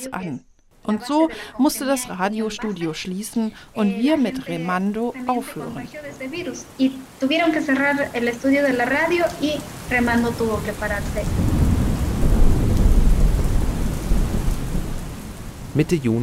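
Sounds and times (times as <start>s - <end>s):
speech: 0.0s - 11.6s, 15.8s - 16.2s
heavy rain pouring down steadily: 1.1s - 16.2s
deep rolling thunder rumbling: 9.0s - 15.8s.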